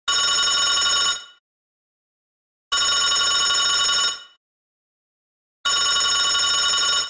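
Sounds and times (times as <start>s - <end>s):
loud telephone bell ringing: 0.1s - 1.4s, 2.7s - 4.4s, 5.7s - 7.0s.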